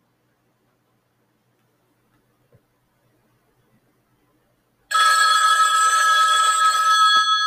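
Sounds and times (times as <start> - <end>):
telephone bell ringing with a bright metallic trill: 4.9 - 7.4.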